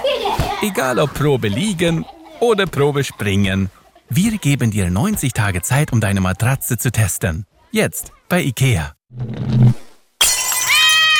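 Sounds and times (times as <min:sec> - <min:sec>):
laughter: 0:00.0 - 0:04.1
speech: 0:00.6 - 0:09.8
low thud or scrape: 0:09.1 - 0:10.0
porcelain Ming vase shattering after cats knock it off its pedestal: 0:10.2 - 0:11.1.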